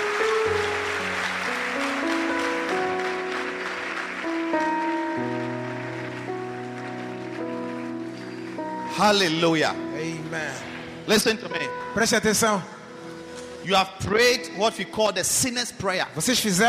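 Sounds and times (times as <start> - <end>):
church congregation clapping: 0.0 - 10.3
sustained keyboard chords: 0.0 - 16.6
speech: 9.0 - 12.8, 13.6 - 16.6.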